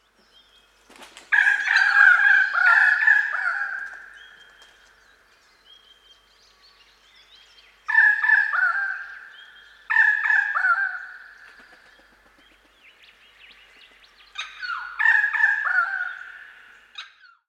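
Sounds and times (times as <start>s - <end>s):
Pied Currawong Strepera graculina calling: 0.0s - 17.4s.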